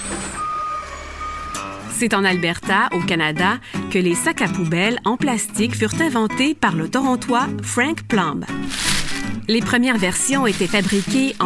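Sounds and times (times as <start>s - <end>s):
garbage truck reversing alarm beeping: 0.0s - 1.8s
speech: 2.0s - 8.9s, 9.5s - 11.4s.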